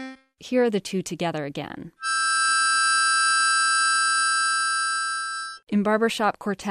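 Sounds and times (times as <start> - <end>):
speech: 0.4 - 2.2, 5.8 - 6.6
two harmonica notes held together in a chord: 2.0 - 5.6.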